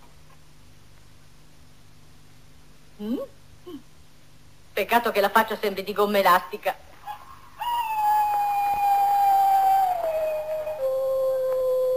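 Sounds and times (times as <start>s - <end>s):
speech: 3.0s - 3.9s, 4.8s - 6.8s
jackal howling in a long high wail: 7.6s - 11.9s.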